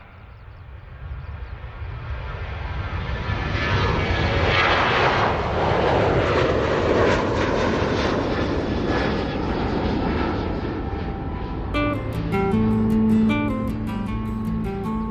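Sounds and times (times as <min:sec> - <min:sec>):
airplane engine roaring during takeoff: 0:00.0 - 0:15.0
steadier humming tone: 0:09.6 - 0:15.0.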